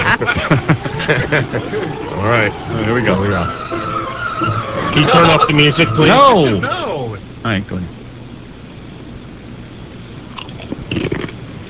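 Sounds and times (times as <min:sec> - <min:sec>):
laughter: 0:00.0 - 0:07.0
faint hum: 0:00.0 - 0:11.6
speech: 0:00.2 - 0:03.6, 0:04.4 - 0:08.0
man biting and chewing crunchy food: 0:10.3 - 0:11.6.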